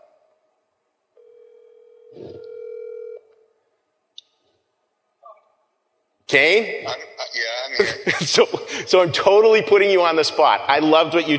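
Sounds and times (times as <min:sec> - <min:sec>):
phone call ringback tone while waiting for pickup: 0:01.2 - 0:03.2
speech: 0:02.1 - 0:02.6, 0:06.3 - 0:11.3.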